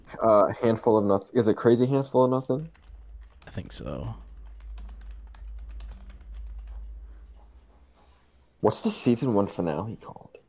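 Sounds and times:
low steady hum: 0.0s - 10.4s
speech: 0.2s - 2.8s, 3.5s - 4.2s, 8.6s - 10.4s
typing on a computer keyboard: 2.6s - 7.4s.

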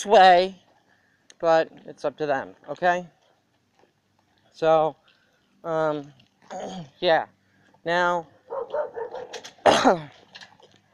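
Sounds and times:
speech: 0.0s - 0.6s, 1.4s - 3.2s, 4.6s - 5.0s, 5.6s - 10.2s
dogs barking in a residential neighborhood: 8.4s - 9.6s.

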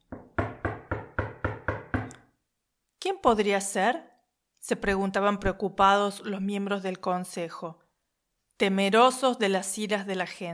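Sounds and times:
loud knocking on a door: 0.1s - 2.1s
speech: 3.1s - 7.8s, 8.6s - 10.5s.

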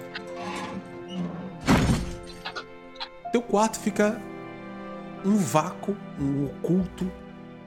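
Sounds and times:
window slamming shut: 1.3s - 2.2s
speech: 3.4s - 4.3s, 5.2s - 7.2s.

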